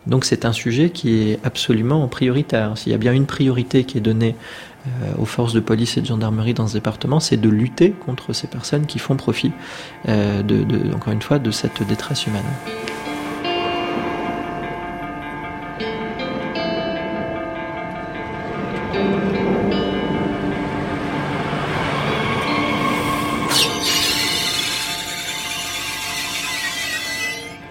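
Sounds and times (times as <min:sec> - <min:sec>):
speech: 0:00.1 - 0:13.0
train stopped at a railway station in the Roya valley humming: 0:09.5 - 0:27.7.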